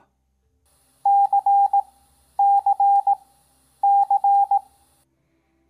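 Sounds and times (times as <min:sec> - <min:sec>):
morse code: 0:01.1 - 0:03.2, 0:03.8 - 0:04.7.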